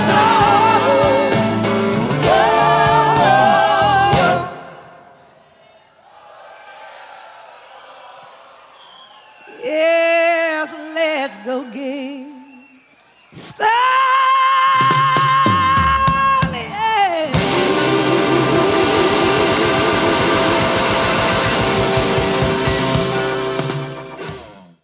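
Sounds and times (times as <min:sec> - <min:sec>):
live rock band playing: 0:00.0 - 0:04.6, 0:14.9 - 0:24.7
crowd whooping: 0:02.2 - 0:15.8, 0:17.3 - 0:24.4
cymbals crashing: 0:17.4 - 0:24.2.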